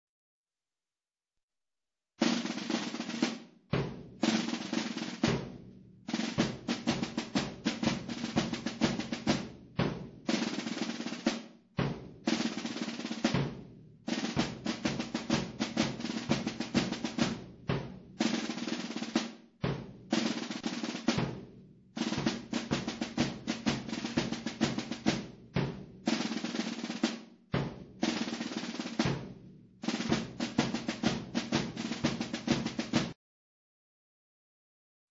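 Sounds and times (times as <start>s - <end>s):
drums: 2.2s - 33.2s
bass drums: 3.8s - 10.4s, 13.2s - 18.2s, 19.6s - 26.2s, 27.6s - 33.2s.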